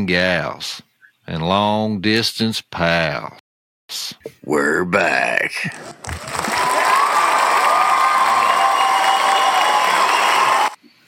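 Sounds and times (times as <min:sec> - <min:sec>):
speech: 0:00.0 - 0:06.4
recorded crowd clapping and cheering sound effect: 0:05.8 - 0:10.8.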